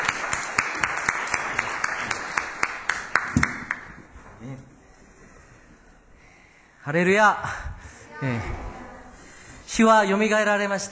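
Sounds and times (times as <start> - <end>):
audience applauding at a worship service: 0.0 - 3.9
speech: 6.9 - 7.6, 8.2 - 8.6, 9.7 - 10.9.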